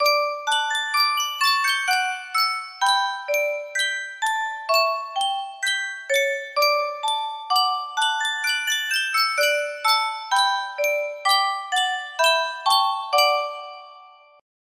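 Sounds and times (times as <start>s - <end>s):
music box melody: 0.0s - 14.4s.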